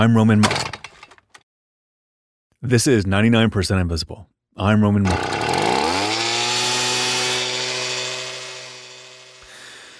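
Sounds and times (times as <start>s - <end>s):
speech: 0.0s - 0.7s, 2.6s - 5.5s
leaf blower motor revving into a high-pitched whine: 5.1s - 9.9s.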